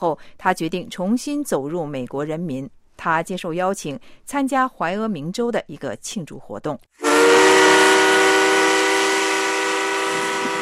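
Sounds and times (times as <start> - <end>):
speech: 0.0 - 7.6
steam train whistle: 7.0 - 10.5.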